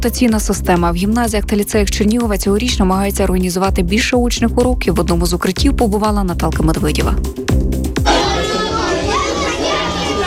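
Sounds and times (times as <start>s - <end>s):
speech: 0.0s - 7.7s
many children's voices babbling in a school shelter in Chernihiv Ukraine: 8.1s - 10.2s.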